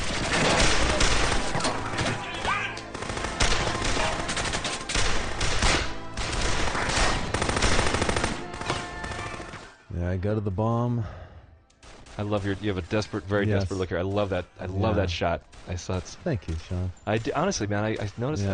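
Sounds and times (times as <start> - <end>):
rapid gunfire in a gunfight: 0.0 - 9.7, 11.8 - 13.1
speech: 10.2 - 11.3, 12.2 - 18.5.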